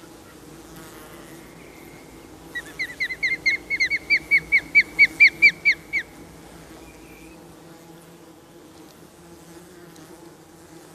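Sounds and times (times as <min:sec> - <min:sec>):
osprey calling with shrill whistles: 0:01.6 - 0:06.2.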